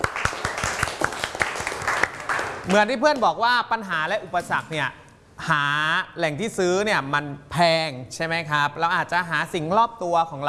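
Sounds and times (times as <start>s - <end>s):
classroom applause for a student: 0.0s - 2.8s
speech: 2.7s - 10.4s.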